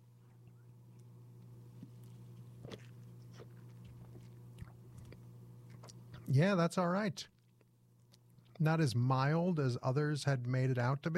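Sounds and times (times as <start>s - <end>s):
steady low electrical hum: 0.0s - 11.1s
soft slurping and mouth-click sounds: 1.8s - 6.3s
person sipping a blackberry drink: 1.9s - 6.2s
speech: 6.3s - 7.3s, 8.6s - 11.1s.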